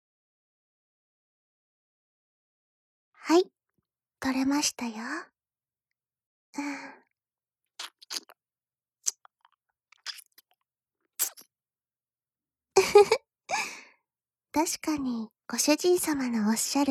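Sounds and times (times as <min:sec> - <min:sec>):
speech: 0:03.3 - 0:03.5, 0:04.2 - 0:05.3, 0:06.6 - 0:07.0, 0:12.8 - 0:13.8, 0:14.6 - 0:16.8
person chewing sweet soft melting food: 0:07.8 - 0:08.4, 0:09.0 - 0:10.6, 0:11.2 - 0:11.5
soft breathy sigh: 0:13.5 - 0:14.0.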